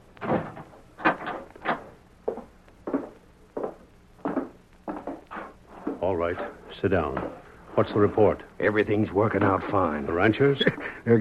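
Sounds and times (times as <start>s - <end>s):
wooden door being shut and locked: 0.2s - 1.9s
speech: 6.1s - 11.1s.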